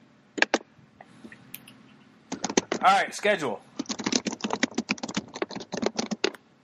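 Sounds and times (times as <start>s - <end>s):
rapid typing on a computer keyboard: 0.4s - 0.6s, 1.6s - 3.0s, 3.8s - 6.4s
speech: 2.8s - 3.7s.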